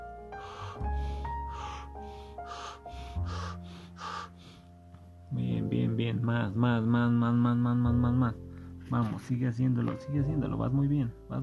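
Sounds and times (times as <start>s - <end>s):
person breathing in through the mouth and out through the nose: 0.3s - 4.8s, 8.4s - 8.8s
speech: 5.3s - 11.4s.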